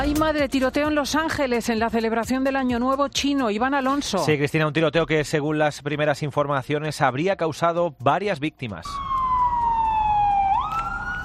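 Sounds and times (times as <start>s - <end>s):
speech: 0.0s - 9.1s
police siren wailing: 8.8s - 11.2s
traffic rumble: 9.0s - 11.2s.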